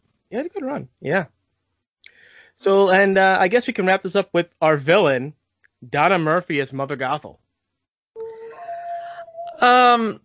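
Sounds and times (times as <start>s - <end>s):
speech: 0.3s - 1.4s, 2.6s - 7.4s, 9.6s - 10.2s
dog howling: 8.2s - 9.6s.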